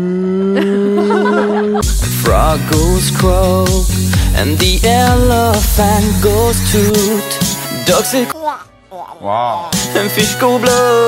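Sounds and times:
human voice imitating a cow's moo with sung tones: 0.0 - 1.0
laughter: 0.6 - 2.0
speech: 2.6 - 11.0
loud steady sustained musical notes: 3.4 - 7.2.

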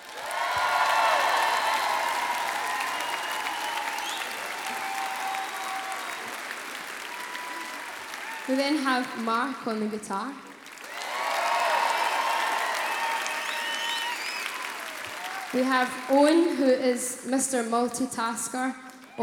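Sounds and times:
faint scattered whoops and cheers: 0.0 - 8.6, 10.8 - 16.4
audience applause: 0.0 - 9.5, 10.4 - 16.6
speech: 8.5 - 10.5, 15.5 - 19.2.

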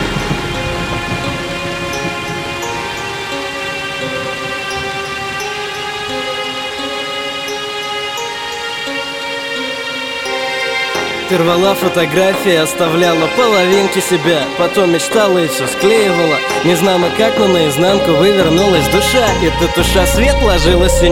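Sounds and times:
low rumbling undertone: 0.0 - 6.8, 17.2 - 21.0
steady continuous rain: 0.0 - 19.8
sustained tonal notes: 0.0 - 21.0
speech: 11.3 - 21.0.

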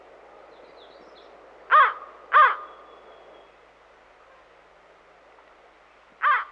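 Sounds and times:
American crow cawing: 1.7 - 2.7, 6.2 - 6.5.

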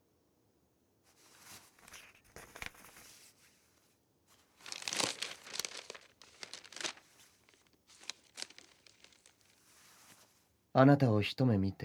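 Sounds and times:
paper letter rustling and crinkling as it is unfolded and handled: 1.1 - 10.4
speech: 10.8 - 11.8.

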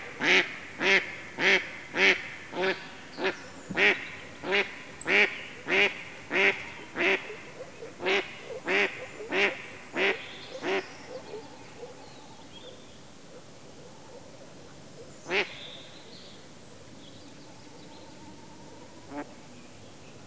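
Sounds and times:
mallard quacking: 0.2 - 7.4, 8.0 - 10.8.

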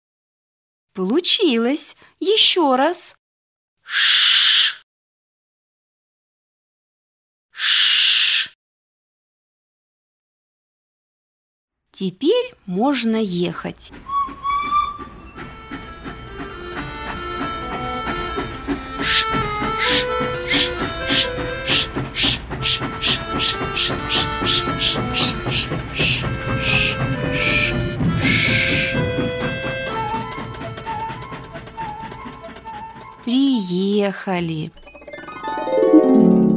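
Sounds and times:
speech: 1.0 - 3.2, 3.9 - 4.2, 12.0 - 14.4, 23.4 - 26.1, 33.3 - 34.8
sustained whistle-like tones: 3.9 - 4.8, 14.0 - 15.5, 19.0 - 33.3
steam train chugging along the rails: 12.9 - 36.5.

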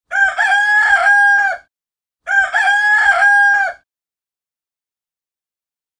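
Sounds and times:
rooster crowing as an early morning wake-up call: 0.1 - 1.7, 2.3 - 3.9.

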